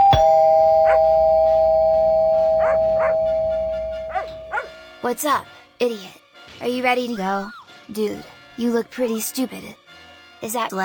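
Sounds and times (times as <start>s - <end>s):
doorbell chiming: 0.0s - 4.8s
dog barking: 2.6s - 3.3s, 4.1s - 4.8s
speech: 5.0s - 9.8s, 10.4s - 10.8s.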